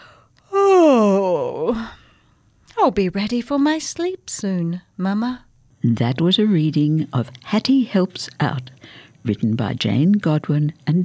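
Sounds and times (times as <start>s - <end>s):
person performing a drawn-out yawn for a child character: 0.0s - 2.0s
speech: 2.8s - 11.0s.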